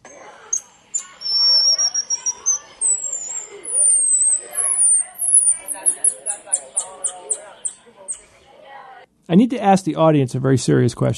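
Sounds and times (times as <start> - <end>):
small monkey giving high bird-like whistling calls: 0.0 - 8.2
dense busy lower chattering sounds: 0.0 - 9.1
speech: 9.3 - 11.1.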